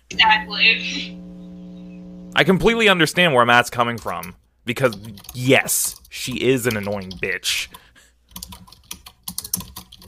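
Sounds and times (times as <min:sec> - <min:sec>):
speech: 0:00.1 - 0:01.2, 0:02.3 - 0:08.7
furious typing on a computer keyboard: 0:03.9 - 0:07.4, 0:08.3 - 0:10.0.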